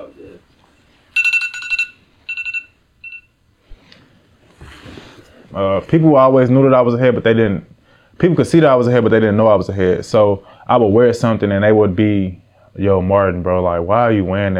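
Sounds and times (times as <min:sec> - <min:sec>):
phone electronic tone bursts: 0:01.1 - 0:03.4
speech: 0:04.7 - 0:14.5.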